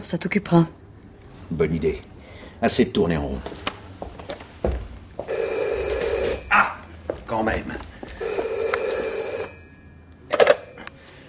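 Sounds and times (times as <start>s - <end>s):
speech: 0.0s - 0.8s, 1.5s - 3.7s, 7.3s - 7.9s
electronic telephone ring in a staged radio drama: 5.3s - 6.6s, 8.2s - 10.9s.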